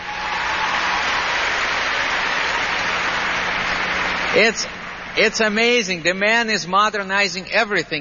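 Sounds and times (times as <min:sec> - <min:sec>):
audience applause: 0:00.0 - 0:05.2
speech: 0:04.4 - 0:07.9.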